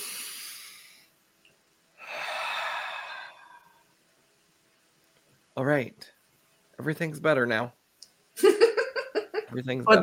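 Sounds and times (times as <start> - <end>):
person drawing a deep centering breath: 0.0 - 1.1, 2.0 - 3.9
speech: 5.6 - 6.2, 6.8 - 7.8, 9.5 - 10.0.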